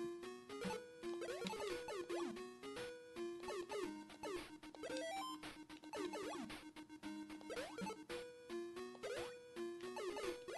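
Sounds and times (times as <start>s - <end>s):
fast busy video game music with synth notes: 0.0s - 10.5s.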